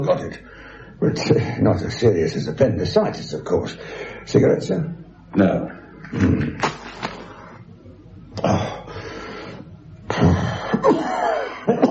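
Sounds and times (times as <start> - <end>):
speech: 0.0 - 7.1
man coughing in rough hacking bouts: 10.1 - 11.8.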